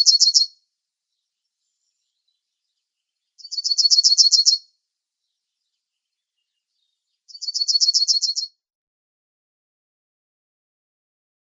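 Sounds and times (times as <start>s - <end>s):
yellowhammer song: 1.1s - 8.5s.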